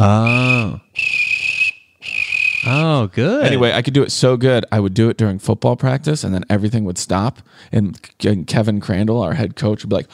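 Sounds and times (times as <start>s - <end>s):
falling voiced sound: 0.0s - 0.8s, 3.2s - 3.7s
person imitating a football coach's whistle with the mouth: 0.0s - 3.7s
speech: 3.0s - 10.1s.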